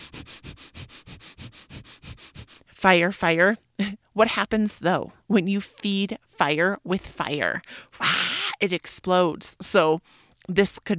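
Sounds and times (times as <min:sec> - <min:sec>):
breath-of-fire breathing through the nose: 0:00.0 - 0:02.8
speech: 0:02.8 - 0:03.6, 0:04.2 - 0:10.9.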